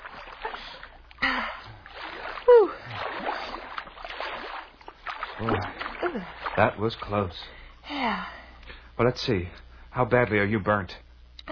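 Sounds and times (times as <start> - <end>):
water splashing as someone wades ashore through shallows: 0.0 - 7.8
speech: 5.4 - 8.4, 9.0 - 11.0.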